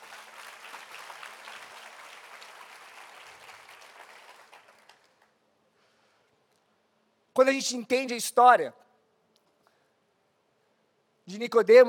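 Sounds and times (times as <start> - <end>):
church audience applauding: 0.0 - 5.3
speech: 7.4 - 8.8, 11.4 - 11.8.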